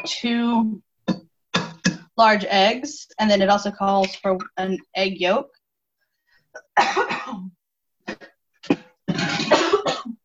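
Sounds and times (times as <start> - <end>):
speech: 0.0 - 0.9, 2.2 - 5.6
person coughing after inhaling vinegar fumes while cooking: 6.6 - 7.5, 8.1 - 10.2.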